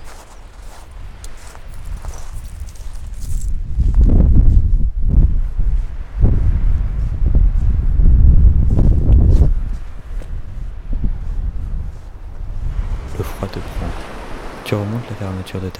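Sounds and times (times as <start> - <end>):
ocean waves breaking on a beach in Brittany France: 0.0 - 3.4, 9.6 - 15.7
gusty wind: 0.0 - 15.7
speech: 14.8 - 15.7.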